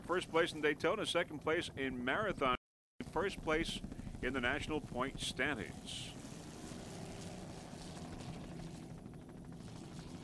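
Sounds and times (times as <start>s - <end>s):
speech: 0.1s - 2.6s, 3.2s - 6.2s
38-foot Fountain offshore racing powerboat engine roaring past: 4.9s - 9.0s.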